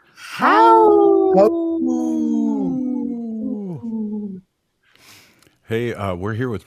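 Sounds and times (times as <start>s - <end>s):
person imitating a wolf howl as a radio tag: 0.2s - 4.4s
speech: 0.4s - 0.6s, 1.3s - 2.0s, 5.7s - 6.6s.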